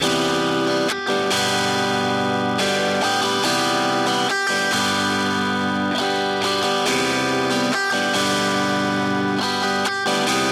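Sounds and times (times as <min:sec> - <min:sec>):
guitar mix: 0:00.0 - 0:10.4.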